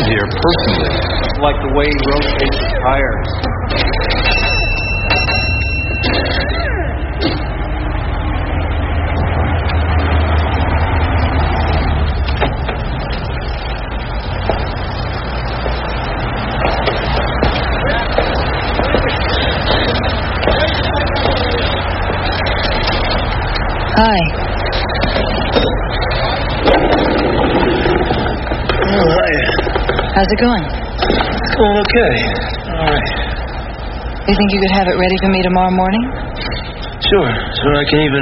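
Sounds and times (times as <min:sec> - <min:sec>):
car engine idling: 0:00.0 - 0:38.2
low noise: 0:00.0 - 0:38.2
speech: 0:00.4 - 0:03.5, 0:24.0 - 0:24.4, 0:30.2 - 0:30.8, 0:31.6 - 0:33.1, 0:34.3 - 0:36.2, 0:37.1 - 0:38.2
ringing chime: 0:03.9 - 0:06.9.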